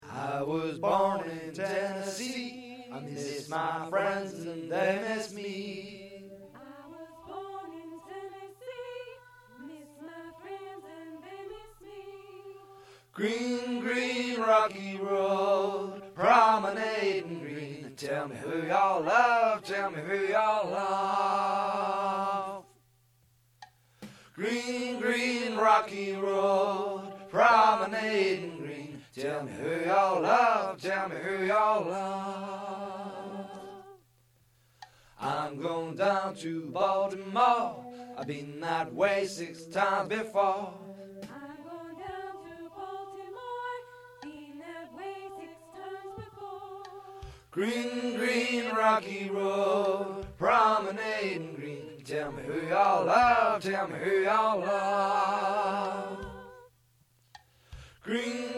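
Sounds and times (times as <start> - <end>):
baritone and tenor singing: 0.0 - 22.7, 24.3 - 34.0, 35.2 - 56.7, 58.0 - 58.5.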